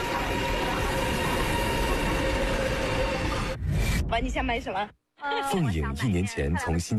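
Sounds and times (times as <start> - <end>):
high-speed train rumbling past: 0.0 - 3.6
speech: 4.2 - 6.9.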